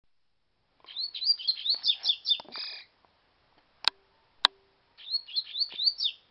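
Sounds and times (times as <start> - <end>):
double-collared seedeater whistled song with buzzy end: 0.9 - 2.4, 5.0 - 6.2.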